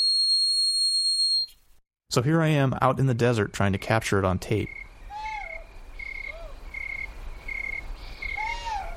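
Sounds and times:
speech: 2.1s - 4.8s
pulsing insect or frog trill: 4.6s - 8.9s
two owls squabbling at night: 4.7s - 8.9s.

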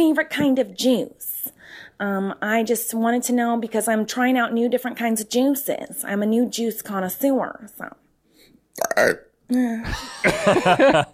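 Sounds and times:
speech: 0.0s - 8.0s, 8.8s - 11.1s
loud burp: 8.8s - 9.3s
laughter: 9.9s - 11.1s.

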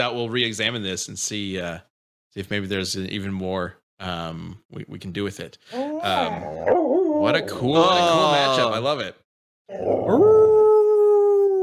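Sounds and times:
speech: 0.0s - 10.5s
female dog baying howl: 5.8s - 7.6s, 9.7s - 11.6s.

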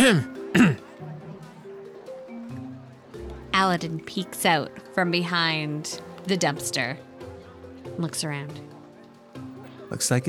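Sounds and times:
woman clearing her throat in the middle of a street: 0.0s - 0.9s
speech: 0.1s - 1.1s, 3.6s - 7.1s, 8.0s - 8.7s, 9.9s - 10.2s.

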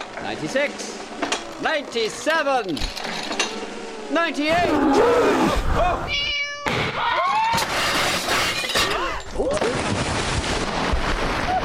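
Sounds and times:
speech: 0.2s - 3.5s, 4.1s - 6.3s
cat meowing: 4.6s - 6.8s
crashing and shattering commotion: 7.5s - 11.6s.

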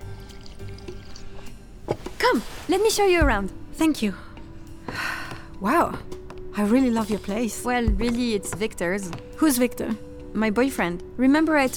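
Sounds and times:
red wine pouring steadily into a glass: 0.0s - 1.4s
speech: 2.2s - 4.3s, 5.6s - 6.0s, 6.6s - 11.7s.

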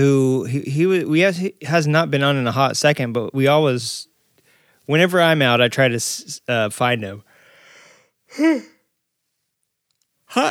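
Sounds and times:
speech: 0.0s - 4.1s, 4.8s - 7.3s, 8.3s - 8.7s
breathy exhale: 7.3s - 8.7s
voiced yawn: 7.6s - 8.9s.

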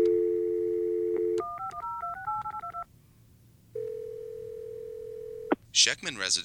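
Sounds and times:
telephone dial tone: 0.0s - 2.8s, 3.8s - 5.5s
speech: 5.8s - 6.4s.

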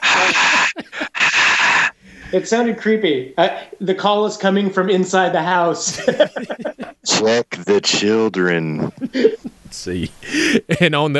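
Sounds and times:
person imitating crowd noise with breathy hissing exhalations: 0.0s - 1.9s, 6.2s - 9.4s
laughter: 0.0s - 2.4s, 5.8s - 11.1s
speech: 0.2s - 0.6s, 2.3s - 11.1s.

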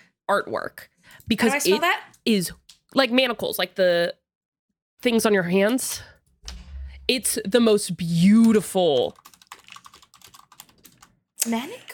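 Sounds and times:
speech: 0.3s - 4.2s, 5.0s - 6.2s, 7.1s - 9.3s, 11.4s - 11.9s
rapid computer keyboard typing: 8.3s - 11.1s.

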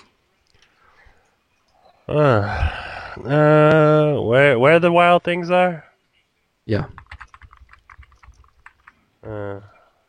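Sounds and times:
speech: 2.1s - 5.9s, 6.7s - 7.0s, 9.2s - 9.7s
typing on a loud computer keyboard: 7.0s - 8.9s.

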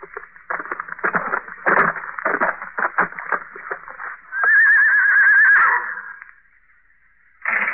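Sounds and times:
hoof-like shuffling: 0.0s - 5.4s
horse whinnying outside: 4.3s - 6.3s.

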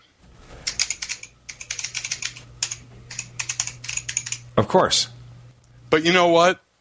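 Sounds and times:
faint low hum: 0.0s - 6.7s
typing on a Matias mechanical computer keyboard: 0.6s - 4.4s
speech: 4.6s - 5.1s, 5.9s - 6.6s.

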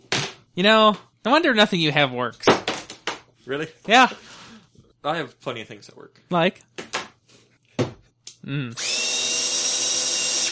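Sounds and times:
speech: 0.6s - 2.6s, 3.4s - 4.3s, 5.0s - 6.8s, 8.4s - 9.0s
hammer drill running: 8.8s - 10.5s.

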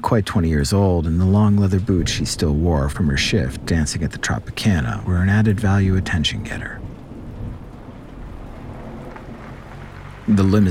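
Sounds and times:
speech: 0.0s - 6.8s, 10.3s - 10.7s
steady rain pouring down: 0.0s - 10.7s.

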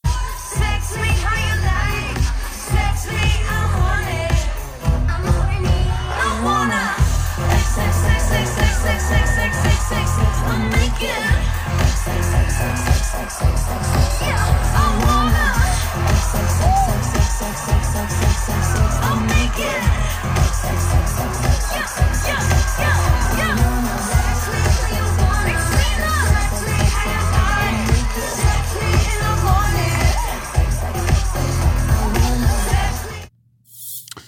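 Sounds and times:
crowd cheering and shouting: 0.0s - 33.3s
live pop song with pulsing beat and heavy bass: 0.0s - 33.3s.

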